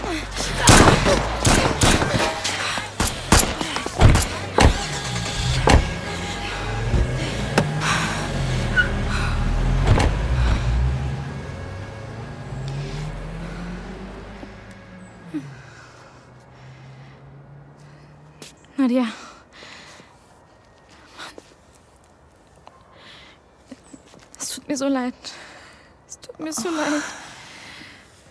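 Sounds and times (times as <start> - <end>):
car engine droning as it turns and drives toward a shop: 0.0 - 18.4
rapid series of sharp loud bangs and clatters: 0.4 - 7.7
speech: 18.8 - 19.2, 24.8 - 25.4, 26.4 - 27.2.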